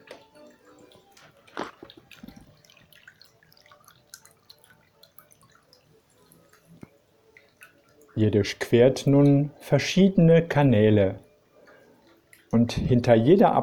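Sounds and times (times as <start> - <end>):
soft irregular water drips: 0.0 - 13.6
speech: 8.2 - 11.2, 12.5 - 13.6.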